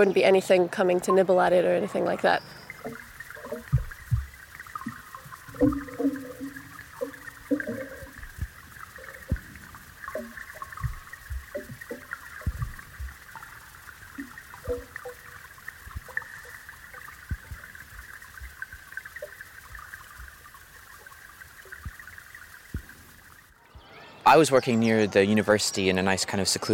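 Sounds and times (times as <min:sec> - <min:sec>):
speech: 0:00.0 - 0:03.7, 0:24.4 - 0:26.7
underwater river water recorded by hydrophone: 0:01.1 - 0:23.6
low gurgling thumps: 0:02.6 - 0:23.3
knocks and rattles of the hydrophone under the water: 0:02.7 - 0:20.4.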